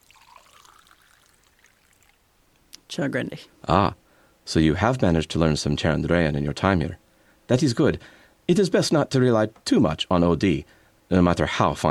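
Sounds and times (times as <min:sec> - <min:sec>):
water pouring into a glass: 0:00.0 - 0:02.2
speech: 0:02.9 - 0:11.8.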